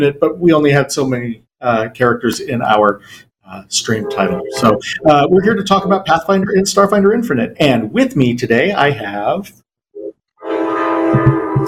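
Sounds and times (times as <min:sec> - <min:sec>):
speech: 0:00.0 - 0:09.6
train horn blaring: 0:10.4 - 0:11.6.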